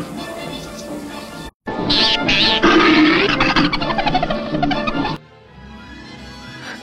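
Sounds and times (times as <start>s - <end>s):
alien creature's shrill laugh film sound effect: 1.9s - 5.2s.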